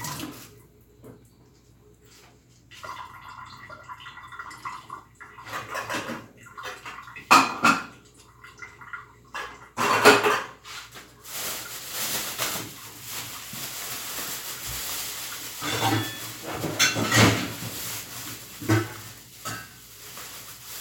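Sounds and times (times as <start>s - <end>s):
faint kitchen noise: 0.0s - 20.7s
black metal cooking pot being handled with scraping and clanks: 15.6s - 19.8s.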